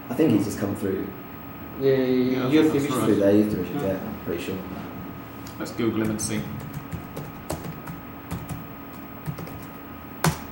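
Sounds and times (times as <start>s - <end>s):
speech: 0.1s - 1.2s, 1.8s - 4.9s, 5.6s - 6.6s
typing on a computer keyboard: 6.0s - 10.4s.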